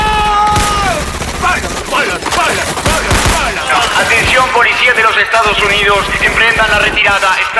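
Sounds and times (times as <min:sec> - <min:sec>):
voices shouting in a battle-like background: 0:00.0 - 0:05.2
gunfire volley: 0:00.5 - 0:07.3
speech: 0:05.4 - 0:07.5.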